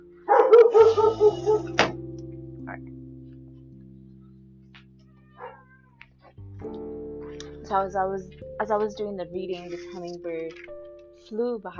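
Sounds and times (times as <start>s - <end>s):
low lingering tone: 0.0s - 11.7s
dog barking: 0.3s - 1.8s, 5.3s - 5.8s
speech: 7.7s - 11.7s.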